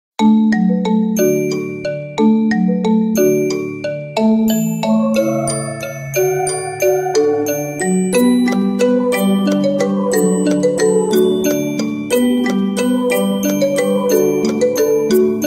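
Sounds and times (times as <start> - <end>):
christmas carol song: 0.2 - 15.4.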